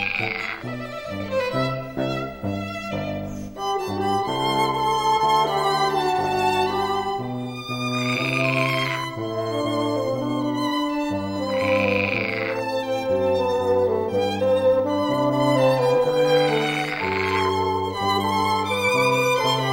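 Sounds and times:
real frogs croaking outdoors: 0:00.0 - 0:02.4, 0:07.8 - 0:09.9, 0:11.4 - 0:12.9, 0:16.2 - 0:17.9
orchestral music played outdoors during an orchestra rehearsal: 0:00.0 - 0:19.7.

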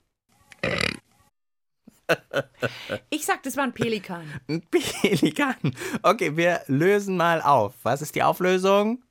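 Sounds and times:
dog burping: 0:00.6 - 0:01.0
speech: 0:02.1 - 0:09.0.

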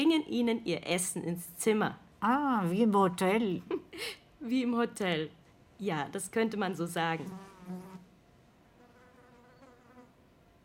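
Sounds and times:
speech: 0:00.0 - 0:08.0
fly buzzing under the ceiling of a room: 0:07.3 - 0:08.1, 0:08.8 - 0:10.6.

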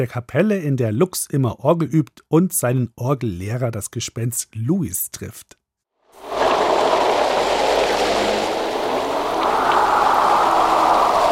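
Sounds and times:
speech: 0:00.0 - 0:05.6
wind-driven rain beating against church windows: 0:06.2 - 0:11.3.

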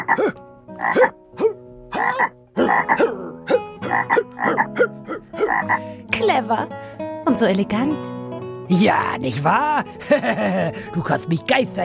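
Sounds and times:
frog croaking: 0:00.0 - 0:05.8
speech: 0:00.2 - 0:01.2, 0:02.2 - 0:03.1, 0:06.3 - 0:11.8
laughter: 0:09.8 - 0:10.9.

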